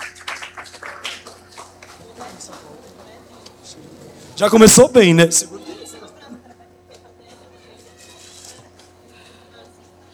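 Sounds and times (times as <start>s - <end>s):
crowd applauding: 0.0s - 6.0s
laughter: 1.8s - 9.9s
speech: 3.7s - 5.6s.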